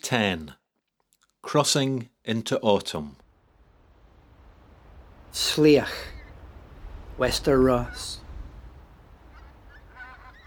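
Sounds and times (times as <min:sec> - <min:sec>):
speech: 0:00.1 - 0:00.6, 0:01.4 - 0:03.2, 0:05.3 - 0:06.1, 0:07.2 - 0:08.2
steady rushing noise: 0:03.2 - 0:10.4
departing geese honking on an autumn day in Wester Ross: 0:05.8 - 0:10.4.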